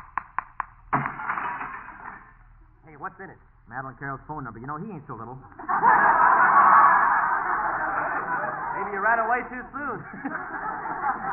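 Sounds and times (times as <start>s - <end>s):
sharp taps on a piggy bank: 0.0s - 1.2s
speech: 3.0s - 6.8s, 8.8s - 11.3s
laughter: 5.5s - 11.3s.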